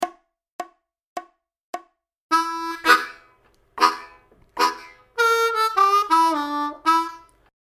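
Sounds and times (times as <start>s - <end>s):
solo harmonica chugging licks: 2.3s - 7.4s.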